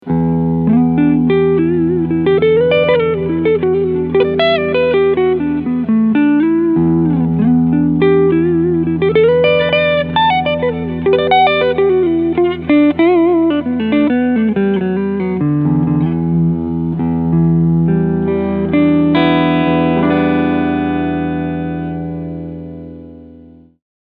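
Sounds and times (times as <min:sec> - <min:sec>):
clean electric guitar on front pickup: 0:00.0 - 0:23.8.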